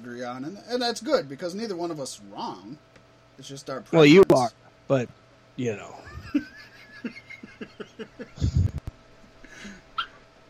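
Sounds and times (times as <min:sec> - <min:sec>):
speech: 0:00.2 - 0:07.2
laughter: 0:06.0 - 0:08.7
dog yelping: 0:10.0 - 0:10.2.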